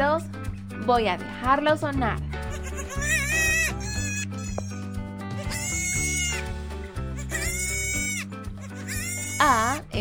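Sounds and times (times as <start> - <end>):
speech: 0.9 - 2.3, 9.4 - 10.0
goat bleating: 2.5 - 9.8.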